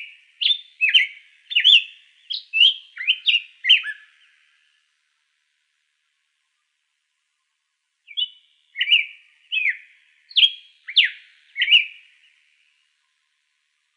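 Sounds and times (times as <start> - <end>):
hepatic tanager singing in Arizona: 0.0 - 4.2, 8.1 - 12.2.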